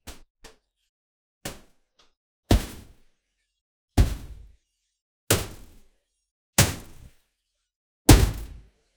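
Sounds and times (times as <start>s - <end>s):
heavy metal suit jumping: 8.1s - 8.6s.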